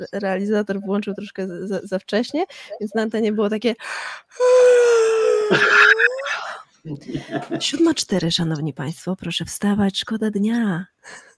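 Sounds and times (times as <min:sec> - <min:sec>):
speech: 0:00.0 - 0:11.3
person imitating a big drawn-out yawn: 0:04.4 - 0:06.6
laughter: 0:07.0 - 0:08.0.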